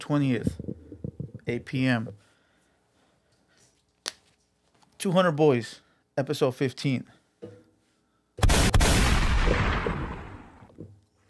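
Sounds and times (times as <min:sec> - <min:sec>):
speech: 0:00.1 - 0:00.6, 0:01.5 - 0:02.2, 0:05.0 - 0:07.6
gunshot sound effect with rumbling tail: 0:08.4 - 0:10.7.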